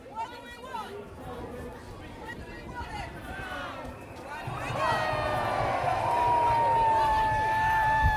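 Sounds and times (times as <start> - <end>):
large outdoor crowd cheering at a political march: 3.3 - 8.1.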